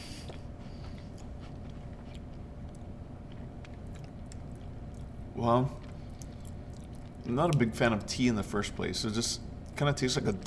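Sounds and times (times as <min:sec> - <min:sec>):
low hum: 0:00.0 - 0:10.4
chewing a whole biscuit: 0:00.2 - 0:07.7
speech: 0:05.4 - 0:05.8, 0:07.2 - 0:10.4.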